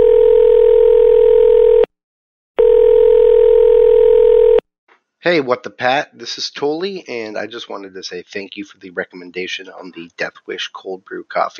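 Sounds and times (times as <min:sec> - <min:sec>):
telephone dial tone: 0:00.0 - 0:01.9, 0:02.6 - 0:04.6
speech: 0:05.2 - 0:11.5.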